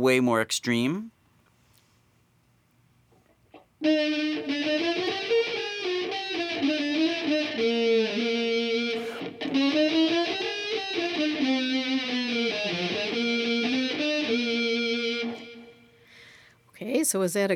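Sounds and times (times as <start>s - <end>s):
speech: 0.0s - 1.2s, 3.8s - 5.1s, 17.0s - 17.5s
fuzzy overdriven electric guitar tone from a computer distortion plug-in: 3.5s - 16.0s.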